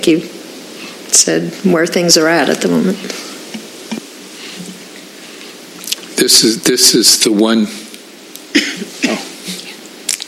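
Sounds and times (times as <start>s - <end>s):
speech: 0.0s - 0.4s, 1.1s - 3.3s, 6.3s - 7.9s, 8.5s - 9.3s
sharp dry raspy coughs: 8.5s - 9.8s.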